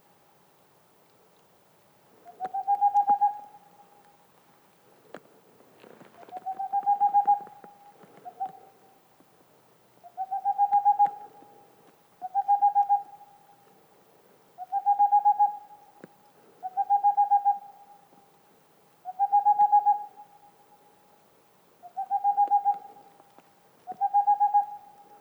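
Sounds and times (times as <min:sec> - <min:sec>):
male boreal owl song in the mountains: 0:02.3 - 0:03.6, 0:06.3 - 0:08.7, 0:10.0 - 0:11.3, 0:12.2 - 0:13.3, 0:14.6 - 0:15.8, 0:16.6 - 0:17.7, 0:19.0 - 0:20.2, 0:21.8 - 0:23.1, 0:23.9 - 0:25.0.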